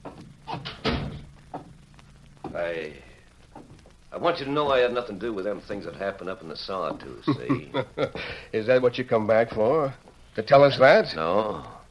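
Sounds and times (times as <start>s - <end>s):
wooden door being shut: 0.0s - 1.8s
speech: 2.6s - 11.8s
laughter: 7.1s - 8.4s.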